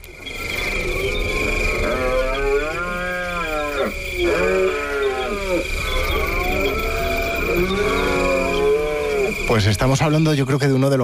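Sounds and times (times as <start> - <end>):
steady high-pitched drone: 0.0 - 11.0
red deer stag roaring during the rut: 1.3 - 9.5
speech: 9.5 - 11.0.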